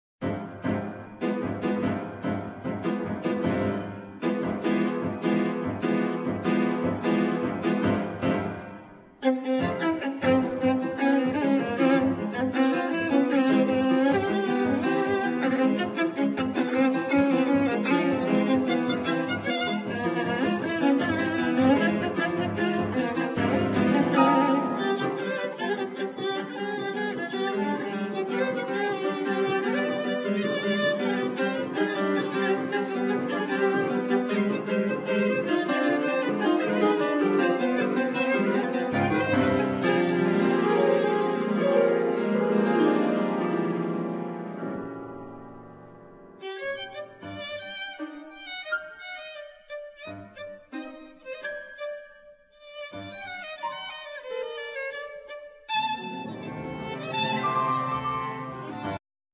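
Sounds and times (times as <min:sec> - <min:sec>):
piano: 0:00.2 - 0:59.0
violin: 0:00.6 - 0:45.5, 0:46.3 - 0:59.0.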